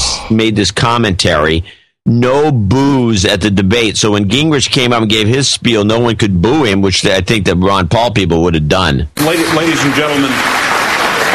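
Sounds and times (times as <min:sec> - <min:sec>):
speech: 0:00.3 - 0:10.8
large audience applauding at a debate: 0:09.2 - 0:11.3
voice rising over clapping: 0:09.4 - 0:11.3.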